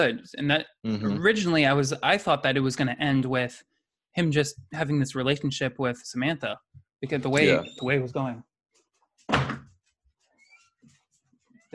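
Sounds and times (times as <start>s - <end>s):
speech: 0.0s - 8.5s
wooden door opening with a thump and rattle: 9.3s - 9.7s.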